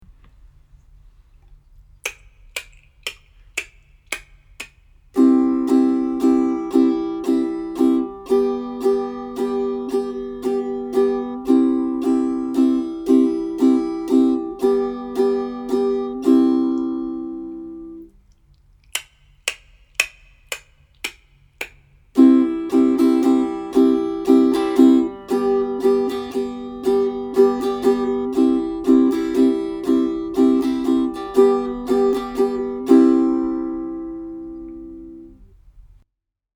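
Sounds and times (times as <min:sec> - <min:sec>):
C and G chords in three-four time: 0:05.2 - 0:18.1, 0:22.2 - 0:35.4.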